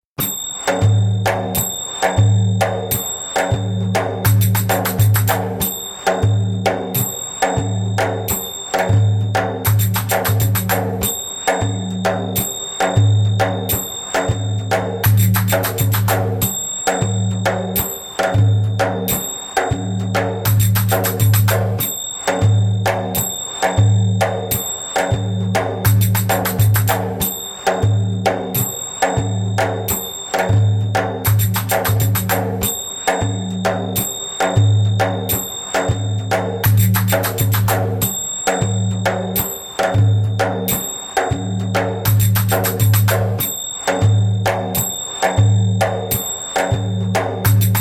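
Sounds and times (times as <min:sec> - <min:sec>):
djembe: 0:00.2 - 0:47.7.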